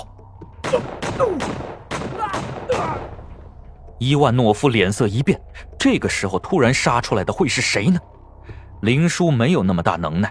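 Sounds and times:
gunshots: 0:00.6 - 0:03.2
speech: 0:00.7 - 0:03.2, 0:04.0 - 0:08.1, 0:08.8 - 0:10.2.

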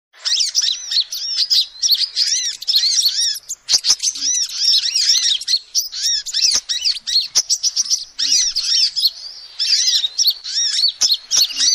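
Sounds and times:
lovebirds chattering: 0:00.2 - 0:11.7
sharp clicks: 0:06.4 - 0:06.8.

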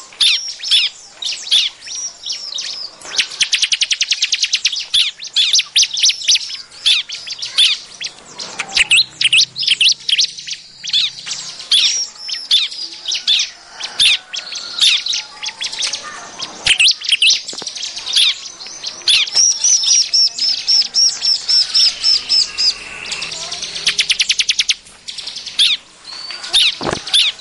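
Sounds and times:
Bar-winged prinia giving high sharp chirps and squeaky notes: 0:00.0 - 0:27.3.

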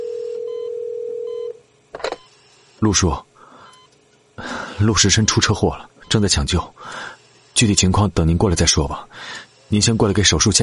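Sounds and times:
telephone ringback tone: 0:00.0 - 0:01.6
speech: 0:02.8 - 0:03.3, 0:04.8 - 0:10.6.

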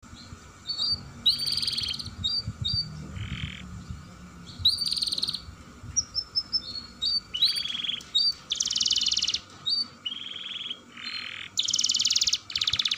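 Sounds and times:
low background rumble: 0:00.0 - 0:09.9
canary singing long rolling trills: 0:00.0 - 0:12.9.

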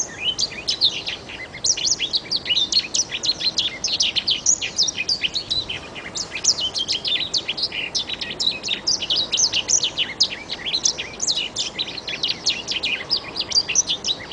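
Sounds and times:
Oriental magpie-robin chirps and whistled phrases: 0:00.0 - 0:14.3
light background hiss: 0:00.0 - 0:14.3.

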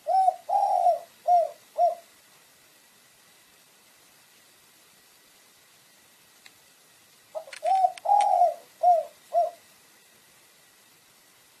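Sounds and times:
pigeon cooing: 0:00.0 - 0:02.1, 0:07.3 - 0:09.7.

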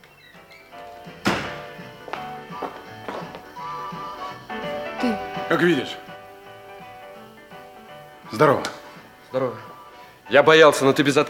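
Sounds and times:
door opening thunk: 0:01.2 - 0:01.8
sustained tonal music: 0:01.4 - 0:10.9
speech: 0:05.0 - 0:06.0, 0:08.3 - 0:09.7, 0:10.3 - 0:11.2.

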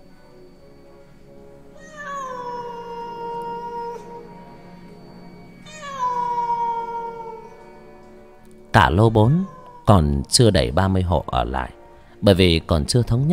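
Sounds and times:
black cat meowing on a balcony: 0:01.8 - 0:04.6, 0:05.6 - 0:07.8, 0:08.9 - 0:10.2
speech: 0:08.8 - 0:13.3.

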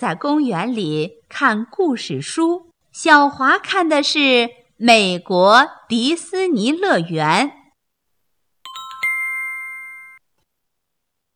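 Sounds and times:
speech: 0:00.0 - 0:07.6
ice cream vendor's bell ringing: 0:08.7 - 0:10.2.

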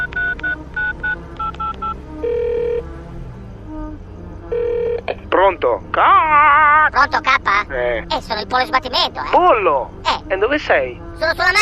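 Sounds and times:
electronic keypad beeps of a phone dialing inside a car: 0:00.0 - 0:02.4
speech: 0:05.4 - 0:11.6.

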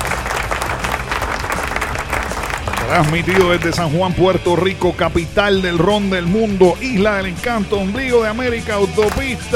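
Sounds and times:
crowd applause at a rock show in San Juan, Puerto Rico: 0:00.0 - 0:05.0
speech: 0:02.9 - 0:09.5.

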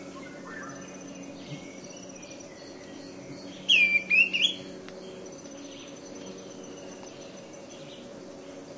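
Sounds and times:
steady low hum: 0:00.0 - 0:08.7
Greenish schiffornis high whistled call: 0:03.7 - 0:04.6.

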